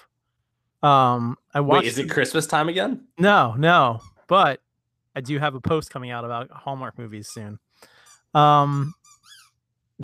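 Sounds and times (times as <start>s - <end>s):
speech: 0.8s - 4.6s, 5.2s - 9.0s
dog squeaking a squeaky dog toy: 3.9s - 4.3s, 8.0s - 9.7s.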